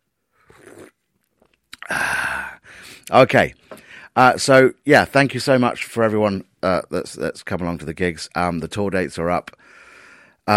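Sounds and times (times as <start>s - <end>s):
person slurping sips of coffee: 0.4s - 1.1s
speech: 3.1s - 9.8s.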